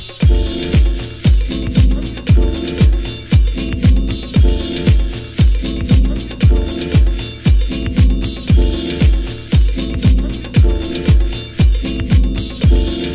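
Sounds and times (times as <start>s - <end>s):
musical downbeat hit: 0.2s - 13.1s.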